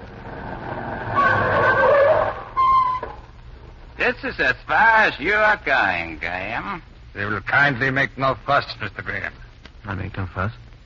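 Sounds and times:
chauffeur-driven car engine rumbling: 0.0s - 4.0s
car tires squealing in a long skid while braking: 0.2s - 3.2s
speech: 4.0s - 10.6s.

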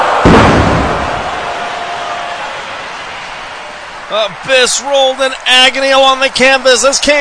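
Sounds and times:
heavy impact of body slammed into glass: 0.2s - 1.4s
speech: 4.1s - 7.1s.

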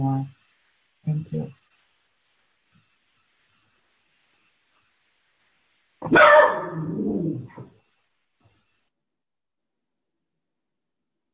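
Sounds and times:
speech: 1.0s - 1.6s
dog barking: 6.0s - 7.7s.

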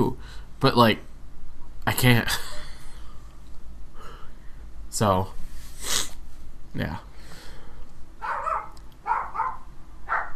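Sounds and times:
speech: 0.0s - 1.1s, 1.8s - 2.5s, 4.9s - 6.0s, 6.8s - 7.1s
dogs barking: 8.2s - 10.3s.

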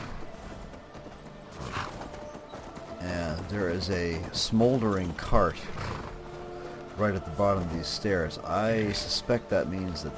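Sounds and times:
horse hooves clip-clopping in a video game: 0.0s - 10.1s
horse whinny in a video game: 1.5s - 2.2s, 5.6s - 6.4s
speech: 3.0s - 6.0s, 7.0s - 10.1s.

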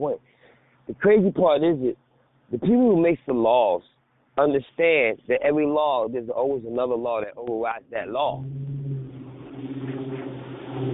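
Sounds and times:
speech: 0.0s - 0.3s, 0.9s - 8.7s
car engine humming as the car drives past: 8.2s - 10.9s.

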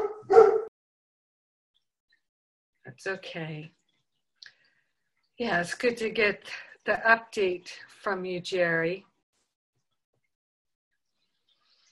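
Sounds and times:
dog whining and barking: 0.0s - 0.7s
speech: 2.9s - 3.8s, 5.4s - 9.1s.

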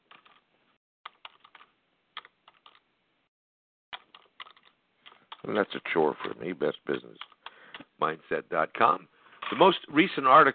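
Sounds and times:
typing on a computer keyboard: 0.1s - 0.4s, 1.1s - 2.8s, 3.9s - 5.5s
speech: 5.5s - 7.4s, 8.0s - 10.5s.

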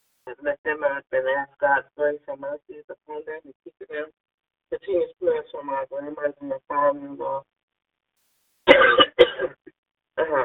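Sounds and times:
speech: 0.3s - 7.5s, 8.7s - 9.6s, 10.2s - 10.4s
dry harsh cough: 8.7s - 9.7s.

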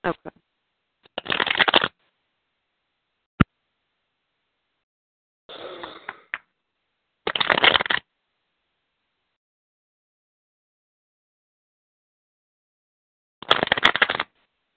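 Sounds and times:
speech: 0.0s - 0.3s
deck of cards shuffling: 1.1s - 1.9s, 7.3s - 8.0s, 13.4s - 14.3s.

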